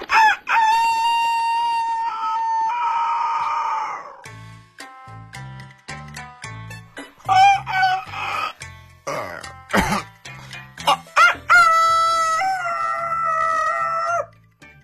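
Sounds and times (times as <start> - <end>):
human voice imitating a rooster crowing: 0.1 - 4.3, 7.3 - 9.5, 10.9 - 14.3.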